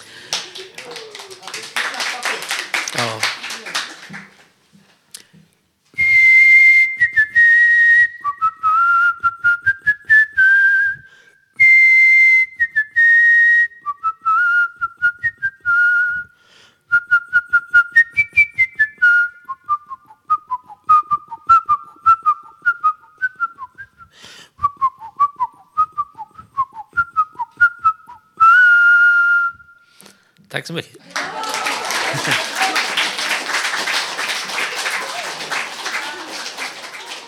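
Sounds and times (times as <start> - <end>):
laughter: 0.0 - 4.4, 31.0 - 37.2
person whistling a classical symphony melody: 6.0 - 30.0
speech: 30.6 - 31.0.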